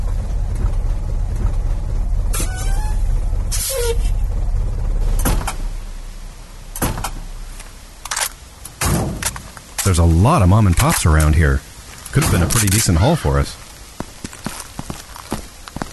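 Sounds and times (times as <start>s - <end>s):
vehicle engine rumbling as it pulls over: 0.0s - 15.9s
air brakes hissing as a vehicle slows and stops: 2.3s - 4.3s
speech: 9.9s - 13.6s.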